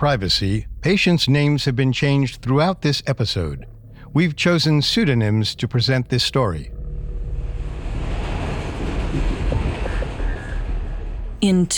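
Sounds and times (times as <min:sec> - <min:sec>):
speech: 0:00.0 - 0:06.8, 0:11.4 - 0:11.7
passenger train rumbling on rails: 0:07.1 - 0:11.7
rhythmic clatter of passenger train on rails: 0:08.0 - 0:11.7.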